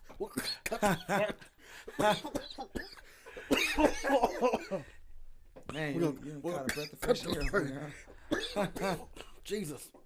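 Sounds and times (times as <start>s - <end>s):
man coughing and choking: 0.1s - 4.9s, 6.5s - 9.4s
speech: 0.2s - 3.0s, 3.8s - 5.0s, 5.7s - 10.0s.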